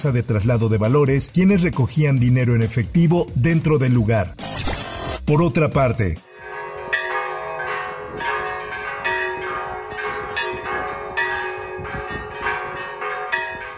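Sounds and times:
speech: 0:00.0 - 0:06.3
church bells pealing: 0:06.3 - 0:13.7.

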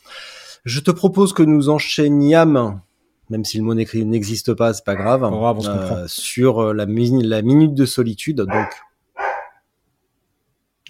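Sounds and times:
speech: 0:00.6 - 0:08.9
dog barking at the mail carrier: 0:05.0 - 0:05.3, 0:08.5 - 0:09.6.

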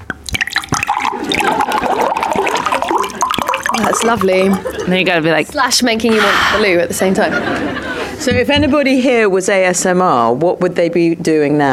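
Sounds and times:
water pouring from a bottle: 0:00.0 - 0:05.2
speech: 0:03.8 - 0:11.7
laughter: 0:06.2 - 0:08.6.

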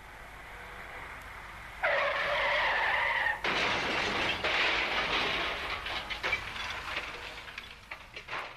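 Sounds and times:
car tyres skidding in a road crash: 0:01.8 - 0:05.9
car crashing in a road crash: 0:01.8 - 0:08.5.

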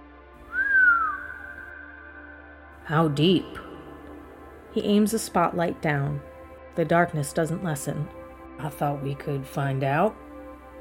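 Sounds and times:
person whistling low: 0:00.5 - 0:02.4
speech: 0:02.9 - 0:03.6, 0:04.7 - 0:10.2.

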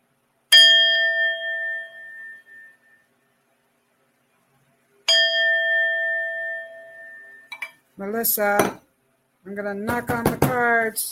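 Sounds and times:
small bell being struck: 0:00.5 - 0:03.1, 0:05.1 - 0:07.8
speech: 0:08.0 - 0:08.8, 0:09.6 - 0:11.1.

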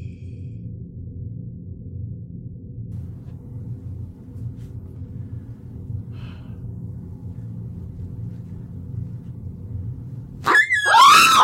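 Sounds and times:
low rumble: 0:00.0 - 0:10.5
squeezed dog toy squeal: 0:10.5 - 0:11.4.

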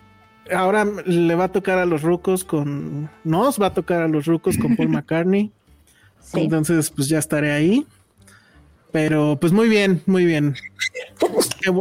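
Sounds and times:
speech: 0:00.4 - 0:05.6, 0:06.2 - 0:08.3, 0:08.9 - 0:11.7
laughter: 0:04.5 - 0:05.0
person sneezing: 0:10.8 - 0:11.6.

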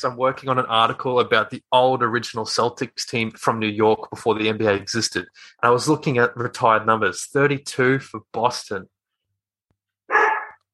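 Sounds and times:
speech: 0:00.0 - 0:08.9
female dog barking: 0:10.1 - 0:10.6.

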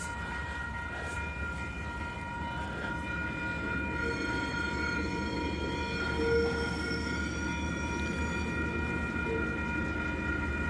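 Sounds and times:
diesel freight train engine rumbling: 0:00.0 - 0:10.6.

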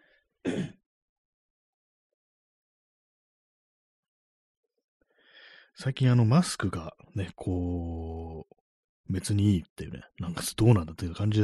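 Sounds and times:
throat clearing: 0:00.5 - 0:00.8
soft breath: 0:05.1 - 0:05.8
speech: 0:05.8 - 0:11.4.

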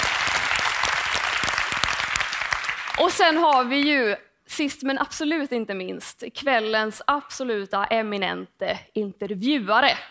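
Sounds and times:
audience applause: 0:00.0 - 0:03.4
speech: 0:03.0 - 0:10.0.

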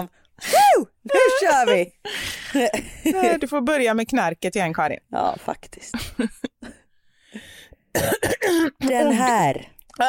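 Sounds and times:
speech: 0:00.0 - 0:06.5, 0:07.3 - 0:10.0
laughter: 0:01.1 - 0:03.4
person coughing: 0:07.9 - 0:09.0.

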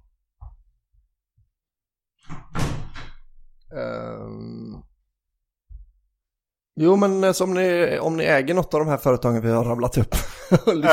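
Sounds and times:
door being pulled shut: 0:02.2 - 0:03.3
speech: 0:03.7 - 0:04.9, 0:06.8 - 0:10.9.

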